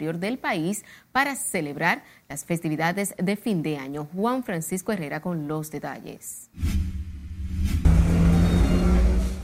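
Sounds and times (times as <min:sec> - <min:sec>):
speech: 0:00.0 - 0:06.8
heavy bus engine idling and revving at a bus terminal in the capital: 0:07.5 - 0:09.4.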